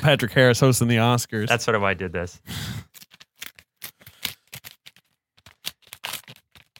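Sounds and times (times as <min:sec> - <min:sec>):
speech: 0:00.0 - 0:03.0
envelope torn open: 0:02.9 - 0:06.7.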